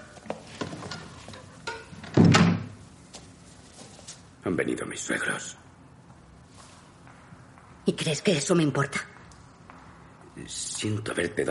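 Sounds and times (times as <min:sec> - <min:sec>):
apartment block door opening and closing: 0:00.6 - 0:02.8
speech: 0:04.4 - 0:05.6, 0:07.9 - 0:09.1, 0:10.4 - 0:11.4.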